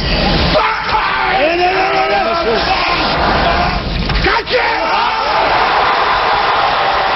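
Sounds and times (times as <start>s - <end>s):
crowd roaring and cheering: 0.1s - 7.1s
weightlifter's strained effort grunt and bellowing scream while hoisting weight: 0.5s - 6.1s.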